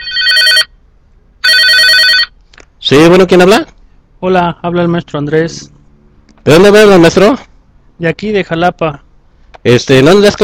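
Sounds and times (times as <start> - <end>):
telephone ringing with electronic bell trill: 0.0 - 0.8, 1.4 - 2.4
speech: 2.9 - 5.8, 6.4 - 9.0, 9.6 - 10.4.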